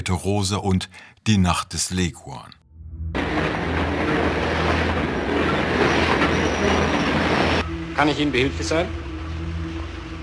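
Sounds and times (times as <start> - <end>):
speech: 0.0 - 2.6, 8.0 - 9.0
streetcar rolling along rails with rumble and rattle: 3.2 - 10.2
thin metallic streetcar wheel squeal on rails: 4.6 - 7.7.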